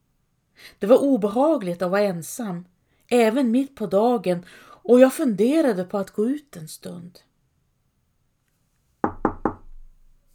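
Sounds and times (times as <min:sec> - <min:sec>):
speech: 0:00.7 - 0:07.3
knocking on a wooden door: 0:09.0 - 0:10.0.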